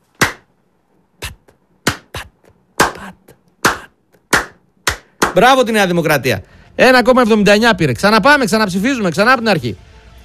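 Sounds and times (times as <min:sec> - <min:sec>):
light sharp slapping sounds: 0:00.1 - 0:00.5, 0:01.2 - 0:05.5
speech: 0:05.3 - 0:09.8.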